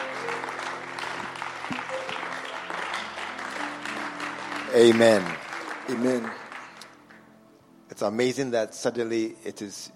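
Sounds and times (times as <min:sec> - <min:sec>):
large audience clapping to welcome a speaker: 0:00.0 - 0:07.3
speech: 0:04.7 - 0:06.4, 0:08.0 - 0:09.9.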